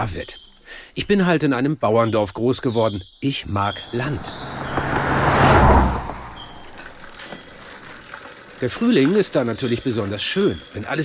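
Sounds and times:
speech: 0.0s - 4.4s, 8.6s - 11.0s
bicycle tyres rolling on a countryside ride: 3.9s - 11.0s
bicycle bell ringing: 7.1s - 8.5s.

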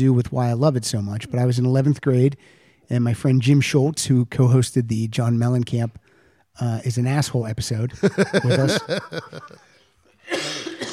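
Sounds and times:
speech: 0.0s - 9.7s
laughter: 8.0s - 9.8s
single loud harsh cough: 10.2s - 10.9s.

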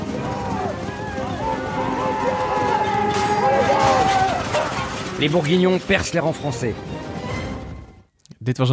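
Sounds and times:
crowd of men shouting and yelling: 0.0s - 6.1s
horses galloping in a battle scene: 0.0s - 7.8s
speech: 5.2s - 7.0s, 8.4s - 8.7s.

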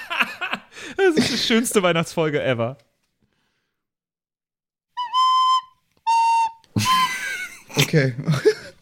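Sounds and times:
speech: 1.1s - 2.9s, 7.9s - 8.5s
father playing Christmas carol on recorder-like wind instrument: 4.9s - 7.4s
laughter: 6.8s - 8.7s.

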